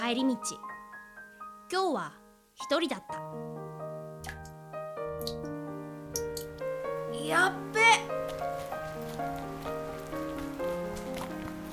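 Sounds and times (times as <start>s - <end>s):
gentle melodic tune: 0.0s - 11.7s
speech: 0.1s - 0.8s, 1.7s - 3.8s, 7.2s - 8.1s
rain pattering on hard surfaces: 8.1s - 11.7s.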